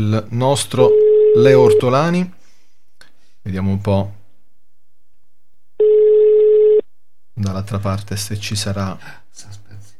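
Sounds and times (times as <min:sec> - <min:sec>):
speech: 0:00.0 - 0:02.4, 0:03.4 - 0:04.2, 0:07.4 - 0:09.6
telephone ringback tone during outgoing call: 0:00.9 - 0:01.9, 0:05.8 - 0:06.9.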